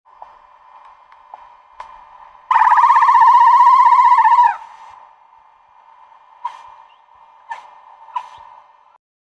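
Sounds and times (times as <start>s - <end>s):
whale calling: 2.5s - 4.7s.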